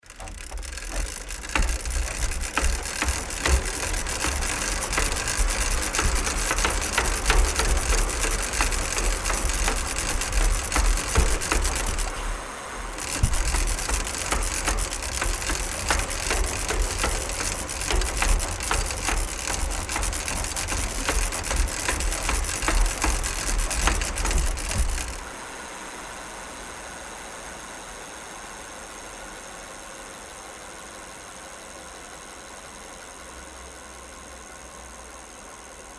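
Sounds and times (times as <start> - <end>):
bicycle pedalling fast: 0.0 - 25.4.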